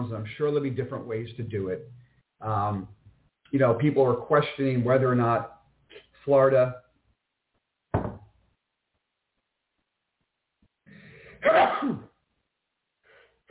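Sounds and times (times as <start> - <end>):
speech: 0.1 - 5.6, 6.2 - 6.8
brief sharp thump: 7.9 - 8.3
person sneezing: 11.2 - 12.2.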